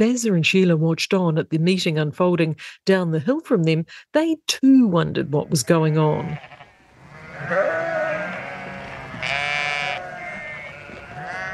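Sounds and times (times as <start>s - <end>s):
speech: 0.0s - 6.6s, 7.4s - 7.9s
small flock of sheep bleating: 5.4s - 11.5s.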